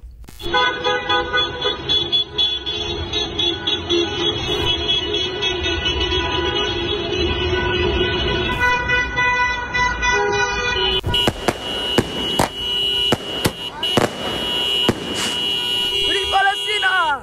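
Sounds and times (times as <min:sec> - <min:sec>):
car horns honking in a car parade in Malmö: 0:00.4 - 0:17.2
rumbling traffic: 0:01.4 - 0:17.2
crowd noise: 0:11.1 - 0:16.3.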